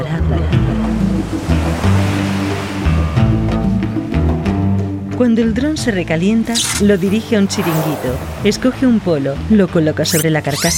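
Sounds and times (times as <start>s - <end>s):
ocean waves breaking on the shore: 0.4s - 4.2s, 6.2s - 10.7s
speech: 5.2s - 10.7s
steady voice-like tonal layer: 10.0s - 10.7s.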